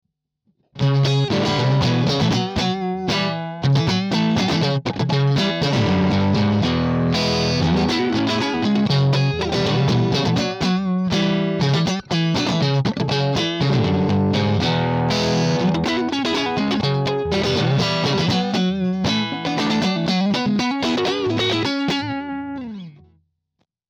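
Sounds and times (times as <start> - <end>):
Stratocaster electric guitar: 0.8 - 23.1.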